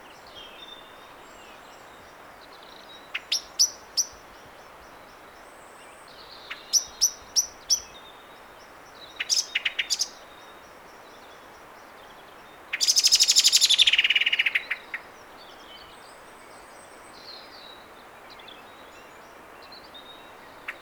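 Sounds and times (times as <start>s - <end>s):
Common blackbird Turdus merula chink calls: 3.0s - 4.2s, 6.4s - 8.0s, 9.0s - 10.2s, 12.7s - 15.1s, 20.0s - 20.8s.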